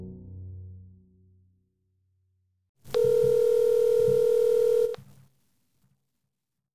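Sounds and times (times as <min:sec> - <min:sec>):
hotel telephone line tone: 0:02.9 - 0:05.0.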